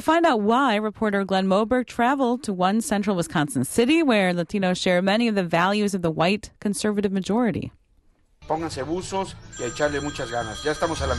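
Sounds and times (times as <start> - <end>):
speech: 0.0 - 7.8, 8.5 - 11.1
telephone bell ringing in a basement in rural Abbotsford Wisconsin: 9.3 - 11.1.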